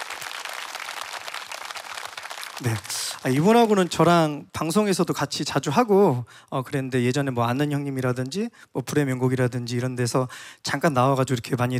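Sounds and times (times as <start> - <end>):
audience applause welcoming a guitarist at a live performance: 0.0 - 4.2
speech: 2.6 - 11.7.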